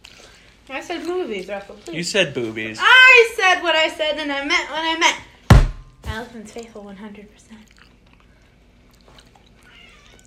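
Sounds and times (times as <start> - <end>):
speech: 0.7 - 5.3, 6.2 - 7.8
cat meowing: 9.6 - 10.2.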